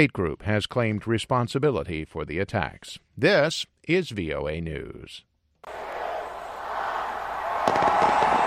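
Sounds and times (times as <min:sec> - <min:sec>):
speech: 0:00.0 - 0:05.9
crowd noise: 0:05.6 - 0:08.4
fireworks explosions popping and crackling: 0:07.4 - 0:08.4.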